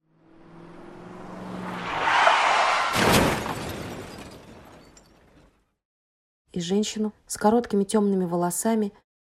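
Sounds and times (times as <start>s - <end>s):
car engine rising into a rushing roar: 0.0s - 3.4s
loud car crash impact: 2.6s - 5.0s
glass shattering in a car crash: 2.9s - 5.6s
debris scattering and tinkling: 3.0s - 5.7s
speech: 6.6s - 9.0s.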